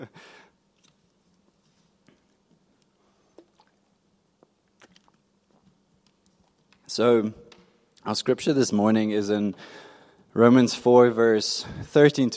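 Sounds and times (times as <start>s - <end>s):
person sipping water: 1.9s - 6.8s
wet mouth clicks: 4.7s - 5.2s
speech: 6.9s - 7.4s, 8.0s - 12.3s.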